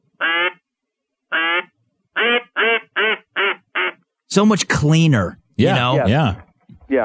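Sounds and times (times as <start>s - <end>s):
duck call blown cleanly: 0.2s - 0.6s, 1.3s - 4.0s
speech: 4.3s - 7.0s.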